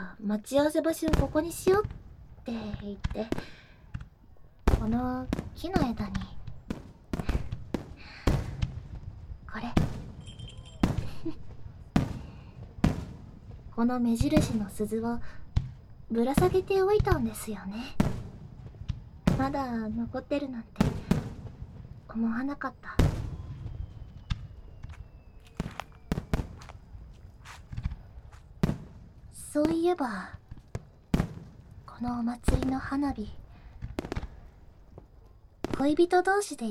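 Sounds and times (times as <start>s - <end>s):
speech: 0.2s - 3.6s, 4.8s - 6.4s, 9.5s - 10.0s, 11.2s - 11.4s, 13.8s - 15.4s, 16.1s - 18.1s, 19.4s - 21.0s, 22.1s - 23.0s, 29.6s - 30.4s, 32.0s - 33.4s, 35.8s - 36.7s
festival fireworks bursting with booming cracks: 1.0s - 36.6s.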